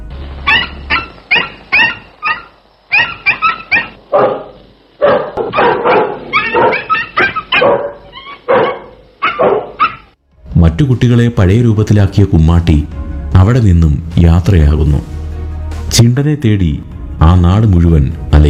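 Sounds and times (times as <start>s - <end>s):
dog barking: 0.4s - 10.2s
speech: 10.8s - 15.2s, 15.9s - 18.4s.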